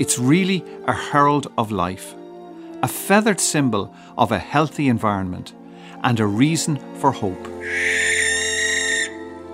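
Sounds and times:
speech: 0.0s - 2.2s, 2.8s - 8.3s
barn owl hissing screech: 7.6s - 9.4s.

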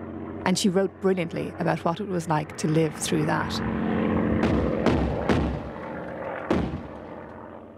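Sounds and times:
speech: 0.4s - 3.9s
steady low rumble: 4.3s - 7.4s
heavy booms of wartime anti-aircraft gunfire: 4.3s - 7.5s.

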